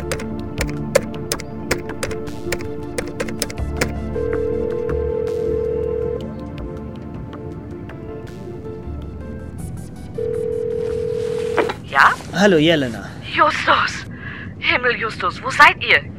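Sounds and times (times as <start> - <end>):
satellite phone keypad clicks and short beeps: 0.0 - 5.0
satellite phone dial tone humming: 0.0 - 6.4, 10.2 - 11.8
speech: 12.4 - 14.0, 14.8 - 16.1.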